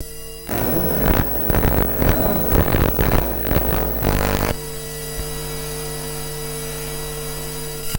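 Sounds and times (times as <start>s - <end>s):
electromagnetic hum: 0.5s - 4.6s
pulsating electromagnetic static: 0.5s - 4.6s.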